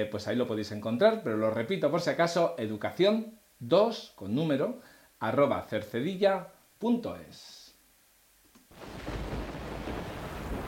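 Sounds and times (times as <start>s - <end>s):
speech: 0.0s - 7.6s
deep rolling thunder rumble: 8.8s - 10.6s.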